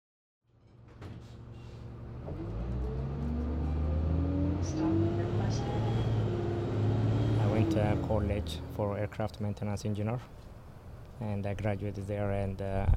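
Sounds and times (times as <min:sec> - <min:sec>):
faint clunks: 0:00.6 - 0:02.9
bus engine starting and accelerating: 0:01.2 - 0:09.2
speech: 0:07.8 - 0:10.5, 0:11.2 - 0:12.9.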